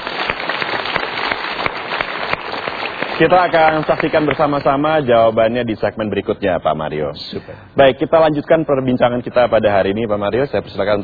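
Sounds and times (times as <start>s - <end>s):
audience applause in a studio talk show: 0.0s - 4.7s
speech: 3.2s - 11.0s.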